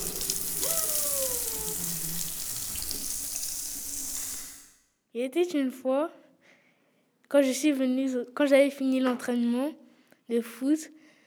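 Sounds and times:
water running from a tap over hair: 0.0s - 4.8s
speech: 5.2s - 6.2s, 7.3s - 11.0s.

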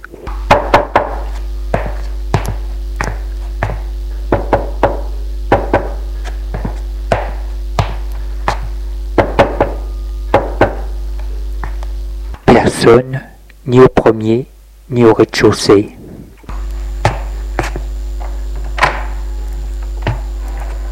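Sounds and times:
steady low hum: 0.0s - 20.8s
knocking on doors: 0.5s - 10.8s
speech: 12.8s - 16.0s.

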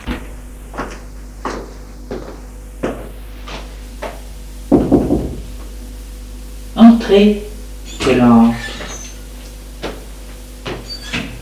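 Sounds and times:
knocking on a bedroom door at night: 4.7s - 5.5s
speech: 7.0s - 7.5s, 8.1s - 8.6s.

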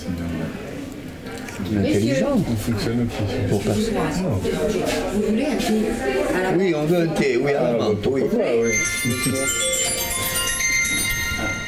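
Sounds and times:
speech: 1.6s - 10.0s
telephone ringing with a bright bell-like electronic tone: 8.6s - 11.6s.

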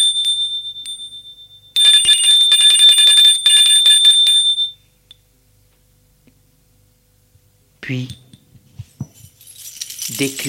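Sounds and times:
doorbell ringing: 0.0s - 4.8s
speech: 7.9s - 8.2s, 10.2s - 10.4s.

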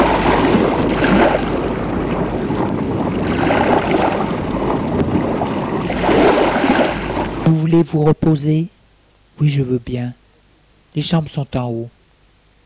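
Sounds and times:
sea waves heard from inside a house: 0.0s - 7.6s
speech: 7.7s - 8.8s, 9.4s - 10.2s, 10.9s - 12.0s.

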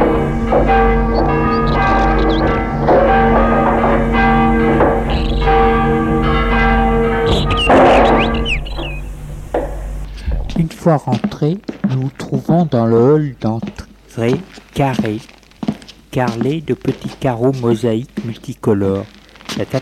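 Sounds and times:
Tyrolean door bell rung by pull slide: 0.0s - 9.2s
faint chirps: 1.1s - 2.5s, 5.1s - 5.6s, 7.3s - 9.3s
speech: 10.8s - 15.4s, 16.2s - 19.8s.

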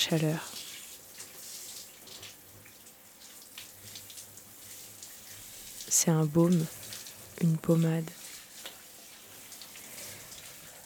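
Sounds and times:
speech: 0.0s - 0.6s, 6.0s - 6.8s, 7.4s - 8.2s
running shower water: 0.0s - 10.8s.

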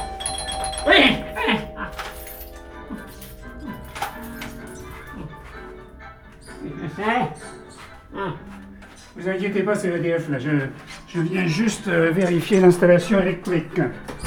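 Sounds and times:
doorbell chime ringing with bright sustained tones: 0.0s - 7.0s
indistinct voice-like sounds: 0.0s - 14.0s
speech: 9.2s - 14.1s.

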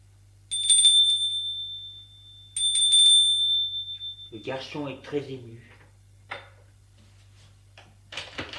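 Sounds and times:
faint low hum: 0.0s - 8.5s
doorbell ringing at a second-floor apartment door: 0.5s - 4.6s
speech: 4.3s - 5.7s.

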